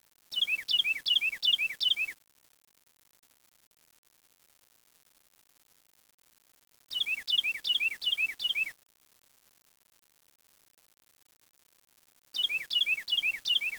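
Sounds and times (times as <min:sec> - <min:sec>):
bird calling in quick repeated whistled phrases: 0:00.4 - 0:02.1, 0:06.9 - 0:08.7, 0:12.4 - 0:13.7.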